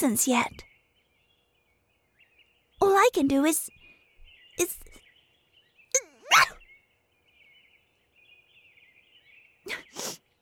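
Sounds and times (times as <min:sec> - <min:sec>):
speech: 0:00.0 - 0:00.7, 0:02.8 - 0:03.8, 0:04.6 - 0:05.0
sneeze: 0:06.0 - 0:06.6.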